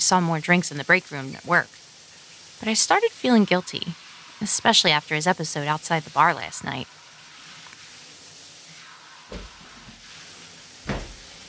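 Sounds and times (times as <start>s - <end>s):
speech: 0.1s - 1.8s, 2.6s - 7.0s
steady rushing hiss: 0.1s - 11.4s
front door shutting with thud: 10.8s - 11.3s
front door opening with dull clunk: 10.9s - 11.2s.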